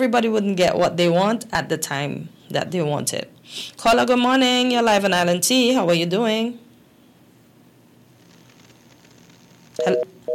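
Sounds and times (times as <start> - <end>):
speech: 0.0 - 6.6, 9.8 - 10.3
telephone line tone after a radio call-in caller drops: 9.8 - 10.3.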